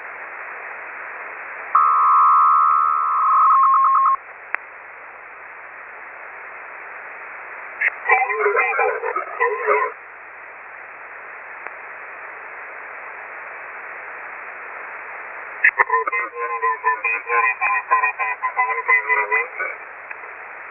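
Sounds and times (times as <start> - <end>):
150 Bd BELL 103 AFSK signal: 1.8 - 4.2, 7.8 - 10.0, 15.6 - 19.9
HARRIS RAU ring tones: 1.8 - 4.2
HARRIS RF-3575 RAU male voice prompt: 15.8 - 19.8.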